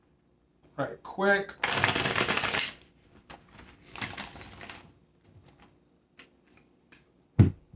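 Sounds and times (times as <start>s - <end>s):
speech: 0.8s - 2.1s
tarot cards being shuffled: 1.6s - 6.7s.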